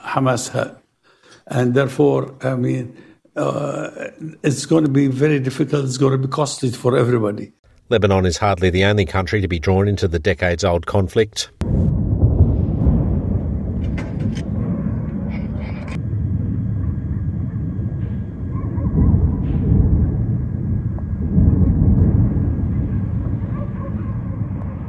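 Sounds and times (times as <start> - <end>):
speech: 0.2 - 0.8, 1.4 - 11.9
deep rumbling booms of airstrike explosions on Sana'a in Yemen: 11.6 - 24.8
sharp crackling bursts: 11.6 - 24.8.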